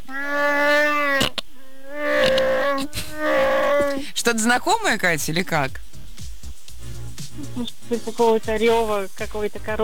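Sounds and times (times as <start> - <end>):
person imitating Wookiee growling roars in Shyriiwook: 0.2 - 4.0
speech: 4.2 - 5.9, 7.6 - 9.8.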